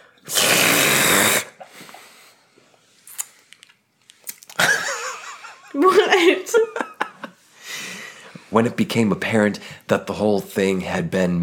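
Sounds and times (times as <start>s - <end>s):
loud slurping of a drink: 0.2s - 1.6s
quiet wet sips and clicks: 0.3s - 1.5s, 3.0s - 4.6s
speech: 5.8s - 6.9s, 8.5s - 11.4s.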